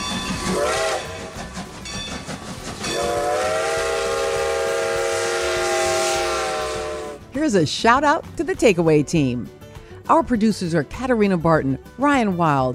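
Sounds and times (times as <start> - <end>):
train whistle blowing: 0.0 - 1.4, 2.9 - 7.2
train rumbling and hissing pulling into station: 0.0 - 7.3
speech: 7.4 - 12.7.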